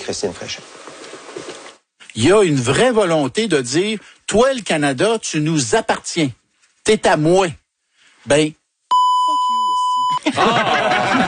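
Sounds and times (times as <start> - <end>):
speech: 0.0 - 0.8, 2.2 - 7.6, 8.2 - 8.6, 10.3 - 11.2
steady high censorship bleep over a swear word: 8.9 - 10.3
laughter: 10.2 - 11.2.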